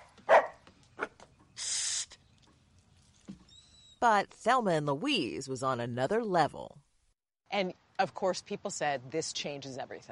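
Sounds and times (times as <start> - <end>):
dog barking: 0.0 - 1.2
breathy hiss: 1.6 - 2.2
speech: 4.0 - 6.8, 7.5 - 10.0.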